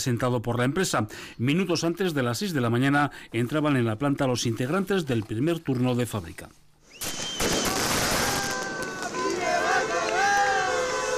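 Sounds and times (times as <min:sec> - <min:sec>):
speech: 0:00.0 - 0:07.3
sharp cracking bangs: 0:07.0 - 0:09.2
outdoor crowd cheering and shouting support: 0:07.7 - 0:11.1.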